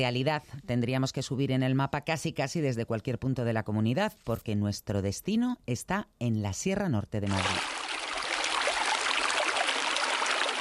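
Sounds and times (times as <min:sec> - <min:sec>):
speech: 0:00.0 - 0:07.8
flowing river water rushing: 0:07.4 - 0:10.5.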